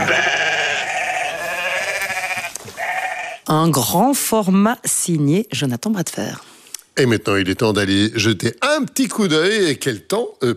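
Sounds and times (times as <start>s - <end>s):
sheep bleating on calcareous grassland in a national park: 0.0s - 3.5s
speech: 3.5s - 10.5s.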